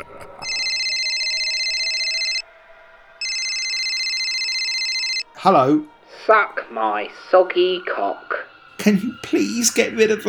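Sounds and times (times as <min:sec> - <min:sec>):
electronic phone ringtone trilling: 0:00.4 - 0:02.4, 0:03.2 - 0:05.3
speech: 0:05.4 - 0:10.2.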